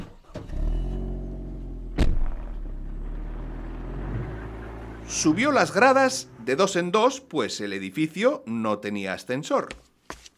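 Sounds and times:
taxi engine idling: 0.0 - 7.5
taxi door thud as the passenger gets out: 1.8 - 3.5
speech: 5.1 - 9.8.

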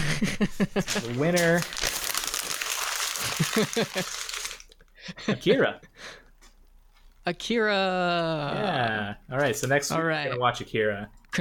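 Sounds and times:
speech: 0.2 - 2.0, 3.3 - 4.3, 5.0 - 6.2, 7.2 - 11.3
paper being shuffled, rustling and crinkling: 0.8 - 4.8
laughter: 3.2 - 4.3.

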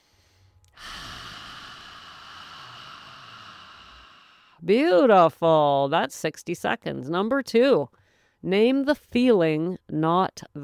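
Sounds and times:
deep breath in and out through a wide-open mouth: 0.0 - 4.6
speech: 4.6 - 10.6.

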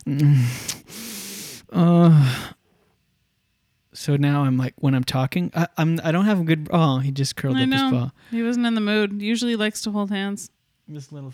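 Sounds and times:
loud deep controlled breathing: 0.0 - 3.0
speech: 0.1 - 0.7, 4.1 - 11.3.

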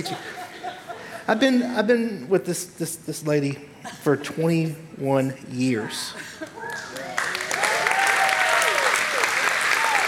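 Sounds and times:
speech: 0.0 - 0.4, 1.3 - 6.5
laughter: 0.0 - 1.9
audience applause: 6.6 - 10.0
scattered whoops: 6.6 - 10.0.

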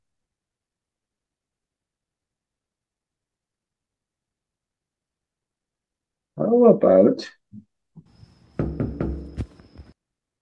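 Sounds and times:
speech: 6.4 - 7.6
firm knocking on a door: 8.6 - 9.8.

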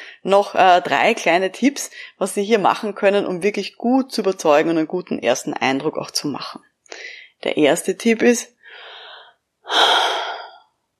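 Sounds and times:
speech: 0.2 - 8.9, 9.7 - 10.2
deep breath in: 8.6 - 10.7.

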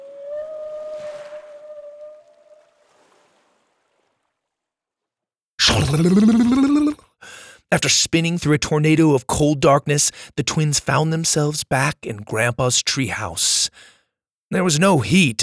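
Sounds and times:
killer whale humming tone underwater: 0.0 - 3.1
squealing killer whale call underwater: 0.0 - 3.8
speech: 5.7 - 6.9, 7.7 - 13.9, 14.5 - 15.4.

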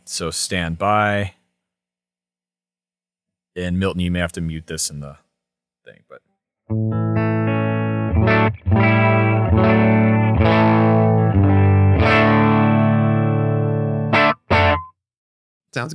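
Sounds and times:
speech: 0.1 - 1.4, 3.6 - 5.2, 5.8 - 7.0, 15.8 - 15.9
clean tone of a Stratocaster electric guitar with low-output pickups through an amp: 6.7 - 14.9.

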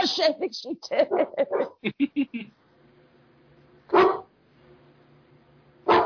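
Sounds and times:
faint steady hum: 0.0 - 6.0
speech: 0.2 - 2.6, 3.9 - 4.2
laughter: 0.8 - 2.6
female dog barking in sharp yaps: 1.1 - 1.8, 3.9 - 4.3, 5.9 - 6.0.

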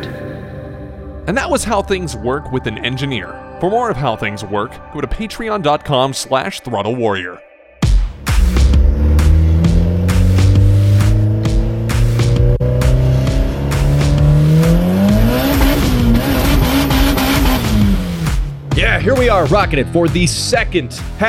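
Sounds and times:
speech: 1.3 - 7.5, 19.0 - 21.2
car engine revving: 7.8 - 19.7.

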